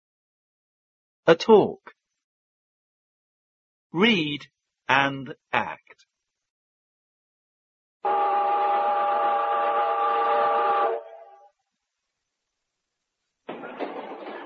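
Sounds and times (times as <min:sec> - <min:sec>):
speech: 0:01.3 - 0:02.0, 0:03.9 - 0:06.1
train whistle: 0:08.0 - 0:11.6.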